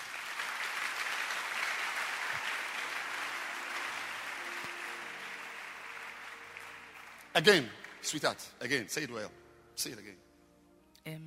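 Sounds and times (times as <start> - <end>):
audience clapping: 0.0 - 8.7
speech: 7.4 - 10.3, 11.0 - 11.2.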